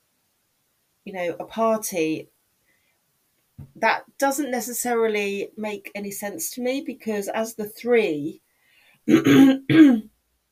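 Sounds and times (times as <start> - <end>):
speech: 1.0 - 2.4, 3.8 - 8.4, 9.0 - 10.1
person clearing throat: 9.1 - 10.1.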